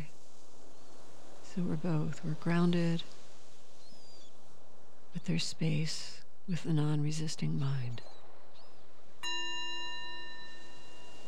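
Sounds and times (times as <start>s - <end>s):
speech: 1.6s - 3.2s, 5.2s - 8.2s
meditation bell struck at the end of a guided meditation: 9.2s - 11.2s.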